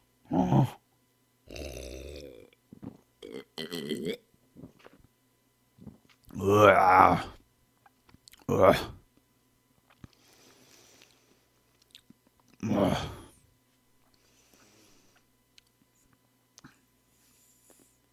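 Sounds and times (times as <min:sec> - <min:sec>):
speech: 0:00.5 - 0:00.8, 0:06.7 - 0:07.3, 0:08.6 - 0:09.0
person gulping a drink in loud wet swallows: 0:01.5 - 0:05.1.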